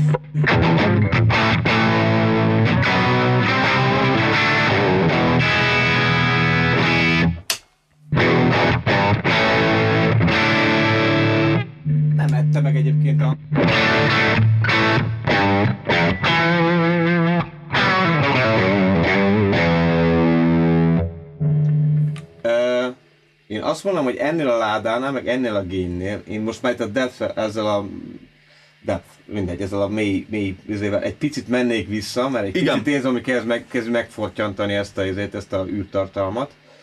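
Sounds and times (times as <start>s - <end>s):
distorted electric guitar through an amp strumming chords and picking riffs: 0.0s - 23.5s
speech: 0.1s - 1.3s, 23.8s - 36.6s.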